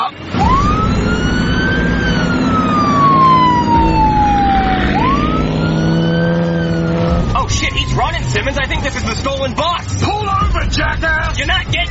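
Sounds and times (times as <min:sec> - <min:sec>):
police car siren wailing: 0:00.0 - 0:10.6
low engine rumble: 0:00.0 - 0:11.8
speech: 0:08.4 - 0:11.8.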